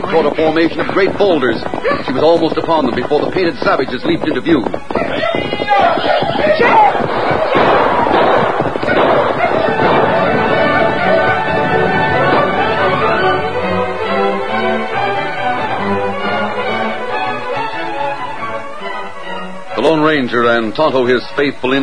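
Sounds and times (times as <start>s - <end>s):
speech: 0.1s - 7.0s, 19.9s - 21.8s
volley of distant popping gunshots: 5.7s - 13.1s
steady humming tonal background: 8.6s - 19.8s.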